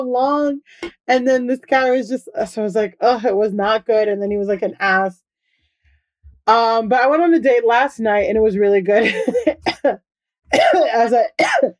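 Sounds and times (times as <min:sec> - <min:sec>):
speech: 0:00.0 - 0:05.2, 0:06.5 - 0:11.7
person coughing into a microphone: 0:09.2 - 0:11.7.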